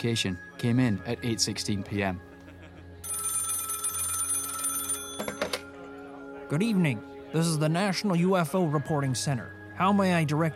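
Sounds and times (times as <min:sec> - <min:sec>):
speech: 0:00.0 - 0:02.3, 0:06.5 - 0:10.5
old-style telephone bell ringing: 0:03.0 - 0:05.8.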